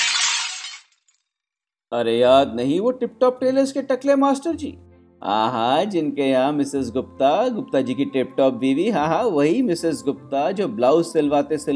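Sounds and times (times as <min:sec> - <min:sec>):
glittering high-pitched glass debris tinkling: 0:00.0 - 0:01.0
neighbour's window pane shattering, hit by a cricket ball: 0:00.0 - 0:01.2
speech: 0:01.9 - 0:11.7.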